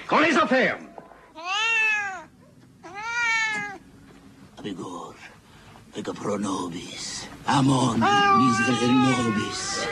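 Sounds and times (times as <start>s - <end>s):
speech: 0.1s - 0.9s, 4.6s - 5.3s, 6.0s - 9.9s
cat meowing: 1.4s - 3.8s, 7.8s - 9.9s.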